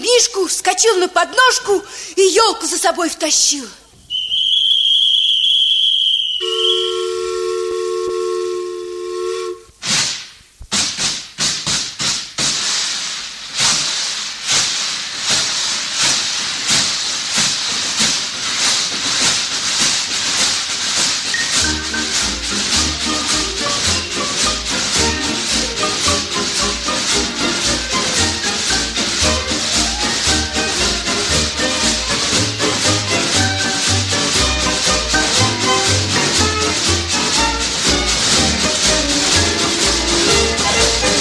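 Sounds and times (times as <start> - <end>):
speech: 0.2 - 3.8
steam train whistle-like tones: 4.0 - 7.5, 21.3 - 31.2
steam train chuffing and hissing steam pulling into a station: 4.1 - 41.1.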